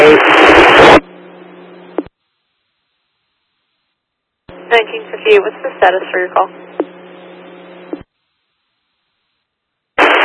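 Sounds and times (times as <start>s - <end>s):
radio static: 0.0s - 2.1s, 4.5s - 8.1s, 10.0s - 10.2s
low hum: 0.0s - 9.4s
speech: 4.8s - 6.7s.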